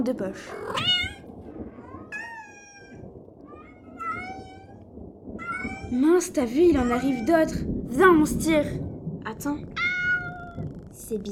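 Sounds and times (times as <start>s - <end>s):
speech: 0.0s - 1.1s, 5.9s - 9.8s, 11.1s - 11.3s
steady low rumble: 0.0s - 11.3s
cat meowing: 0.6s - 4.8s, 5.4s - 6.0s, 6.8s - 7.6s, 9.8s - 10.9s.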